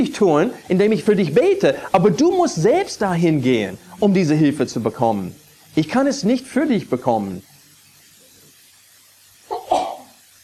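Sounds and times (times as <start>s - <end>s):
speech: 0.0s - 7.5s
person sneezing: 9.5s - 10.2s.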